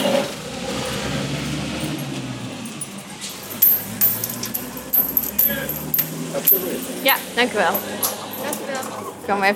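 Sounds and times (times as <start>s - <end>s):
steady low rumble of outdoor traffic: 0.0s - 9.5s
keys jangling while a gate is being unlocked: 1.8s - 8.9s
speech: 6.5s - 9.5s.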